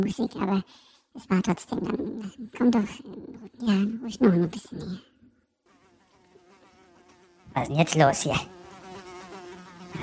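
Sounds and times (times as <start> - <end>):
speech: 0.0 - 5.1, 7.6 - 8.6
fly buzzing: 5.6 - 10.0.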